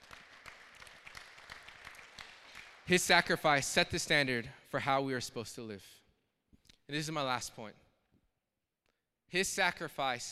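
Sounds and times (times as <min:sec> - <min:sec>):
church audience applauding during a sermon: 0:00.0 - 0:02.9
speech: 0:02.9 - 0:06.0, 0:06.9 - 0:07.8, 0:09.3 - 0:10.3.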